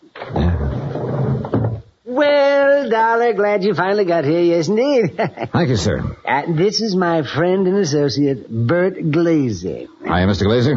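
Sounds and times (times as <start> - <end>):
door opening and closing with a rattling creak: 0.0 - 2.0
speech: 2.2 - 10.7.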